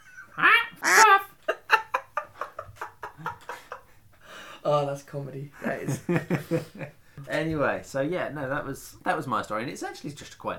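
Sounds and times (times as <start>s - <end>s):
parrot squawking: 0.8s - 1.2s
speech: 4.7s - 10.5s.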